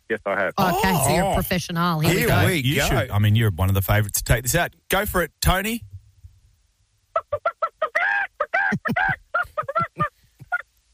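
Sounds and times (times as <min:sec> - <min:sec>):
speech: 0:00.1 - 0:05.9, 0:08.7 - 0:09.2
man vocally imitating a chicken call: 0:00.6 - 0:01.4, 0:02.0 - 0:03.1, 0:08.0 - 0:10.6.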